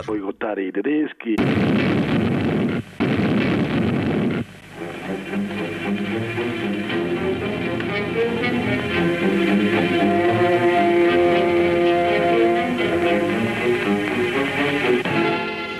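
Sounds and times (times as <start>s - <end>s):
speech: 0.0s - 3.5s
fuel tank explosion: 1.4s - 4.5s
rumbling drone: 1.4s - 15.1s
sustained tones: 3.2s - 15.0s.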